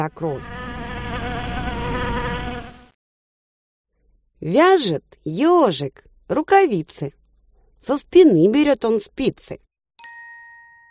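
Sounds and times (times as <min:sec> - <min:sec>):
speech: 0:00.0 - 0:01.3, 0:04.4 - 0:07.2, 0:07.8 - 0:09.6
swarm of bees buzzing in flight: 0:00.4 - 0:02.9.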